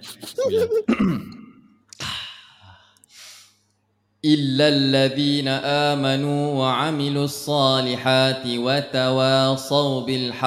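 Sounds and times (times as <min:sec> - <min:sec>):
voiced murmurs: 0:00.0 - 0:01.0
speech: 0:00.4 - 0:01.4, 0:04.2 - 0:10.4
breathy exhale: 0:02.0 - 0:03.6
long deep breath in: 0:02.2 - 0:03.6.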